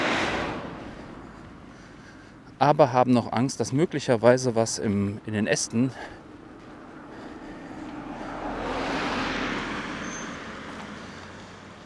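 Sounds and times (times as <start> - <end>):
car passing on a road: 0.0 - 2.7, 5.2 - 11.8
speech: 2.6 - 6.2.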